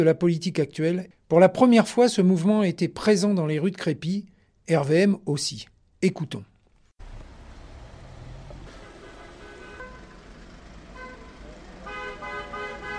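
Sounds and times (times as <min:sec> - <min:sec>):
speech: 0:00.0 - 0:06.5
street traffic noise: 0:07.0 - 0:12.9
car horns honking from several vehicles: 0:08.6 - 0:12.9.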